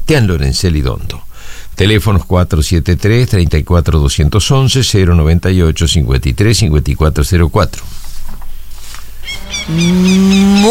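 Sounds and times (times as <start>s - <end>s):
speech: 0.1s - 8.0s, 9.3s - 10.6s
cow mooing in an advert for oat feed: 9.3s - 10.6s.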